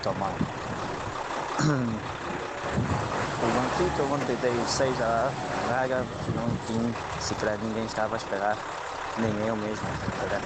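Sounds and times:
speech: 0.0s - 0.6s, 1.6s - 10.4s
wind buffeting the microphone: 0.0s - 1.3s, 2.0s - 3.3s, 5.3s - 7.9s, 9.2s - 10.4s
outdoor roar of passing traffic: 0.0s - 10.4s.

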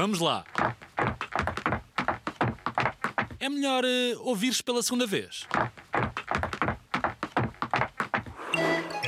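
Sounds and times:
speech: 0.0s - 0.8s, 3.4s - 5.8s
footsteps descending wooden stairs: 0.2s - 3.4s, 5.5s - 8.4s.

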